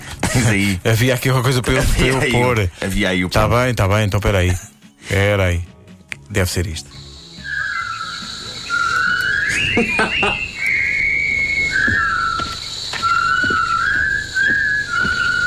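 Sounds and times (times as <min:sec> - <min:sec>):
laughter: 0:00.0 - 0:00.8, 0:01.5 - 0:02.5, 0:09.5 - 0:10.6
speech: 0:00.4 - 0:05.7, 0:06.3 - 0:07.0, 0:09.8 - 0:10.5
person whistling a march-like film theme: 0:06.9 - 0:15.4.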